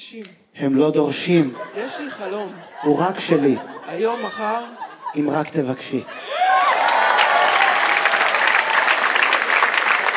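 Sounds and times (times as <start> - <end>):
speech: 0.1 - 6.3
laughter: 1.2 - 7.5
crowd applauding: 6.2 - 10.1.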